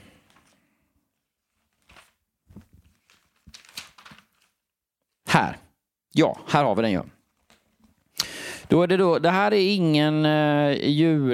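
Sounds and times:
paper pages being flipped: 0:00.3 - 0:00.6, 0:01.4 - 0:04.6, 0:07.2 - 0:08.1
speech: 0:05.4 - 0:07.2, 0:08.7 - 0:11.3.

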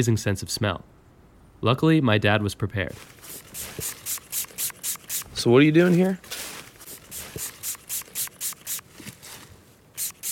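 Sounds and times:
speech: 0:00.0 - 0:01.0, 0:01.6 - 0:04.0, 0:05.4 - 0:06.3
pump spray squirting fox urine onto a wick: 0:03.0 - 0:05.4, 0:06.4 - 0:09.0, 0:10.0 - 0:10.3.

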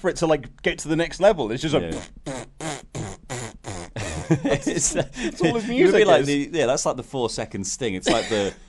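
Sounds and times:
speech: 0:00.0 - 0:02.4, 0:04.3 - 0:08.6
mouth raspberry noises imitating an entrance-music fanfare: 0:01.7 - 0:04.4
laughter: 0:04.0 - 0:06.4, 0:08.1 - 0:08.6.

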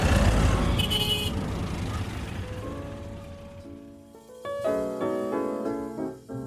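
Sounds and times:
dense street traffic rumbling in New Delhi: 0:00.0 - 0:04.9
car horns honking in New Delhi: 0:00.6 - 0:03.4.

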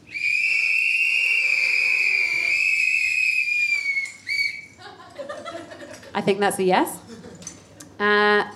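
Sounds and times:
audience whistling in response: 0:00.0 - 0:04.8
laughter: 0:04.7 - 0:06.4, 0:07.0 - 0:07.6
speech: 0:06.2 - 0:07.0, 0:08.0 - 0:08.5.

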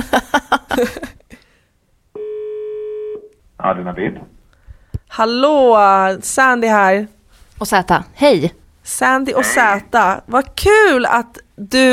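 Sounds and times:
speech: 0:00.8 - 0:01.0, 0:03.7 - 0:04.4, 0:05.2 - 0:11.9
telephone call being dialled and ringing: 0:02.2 - 0:03.3.

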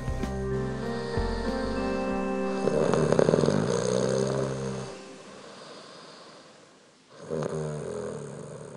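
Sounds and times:
quiet inhale: 0:00.7 - 0:08.7
loud rumbling nasal snoring: 0:02.6 - 0:06.0, 0:07.1 - 0:08.7.

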